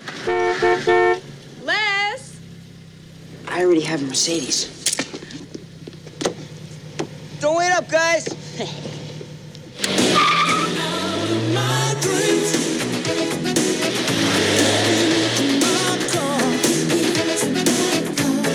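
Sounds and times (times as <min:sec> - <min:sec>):
car tires squealing: 0:00.0 - 0:18.1
car engine revving loudly: 0:00.0 - 0:18.5
speech: 0:03.6 - 0:05.0, 0:07.5 - 0:08.9.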